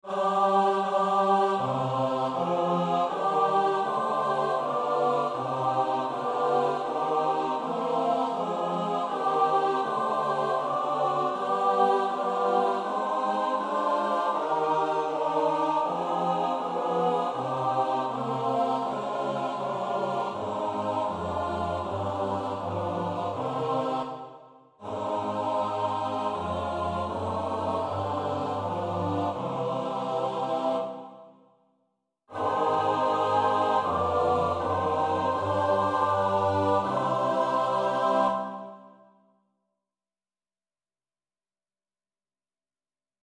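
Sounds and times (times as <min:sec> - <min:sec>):
four-part SATB choir singing: 0:00.0 - 0:31.5, 0:32.3 - 0:39.1.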